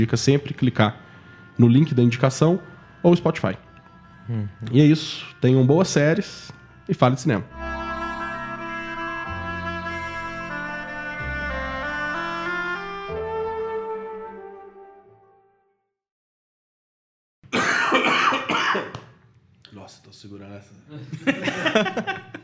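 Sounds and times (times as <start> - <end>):
speech: 0.0 - 1.0, 1.6 - 3.6, 4.3 - 7.6
melodic music passage: 0.0 - 15.3
person coughing loudly: 17.5 - 19.0
laughter: 20.9 - 22.4.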